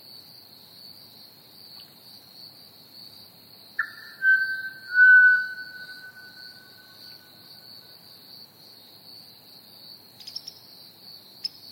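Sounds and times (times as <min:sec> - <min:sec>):
crickets trilling: 0:01.6 - 0:11.7
Pied Butcherbird whistling: 0:03.8 - 0:07.2.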